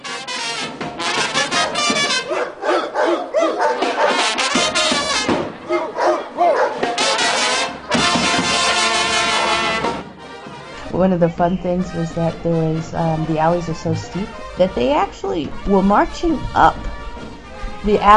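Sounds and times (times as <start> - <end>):
crowd of people barking like dogs during a song: 1.2 - 9.6
people shouting: 1.4 - 9.7
speech: 11.0 - 17.0, 17.8 - 18.1.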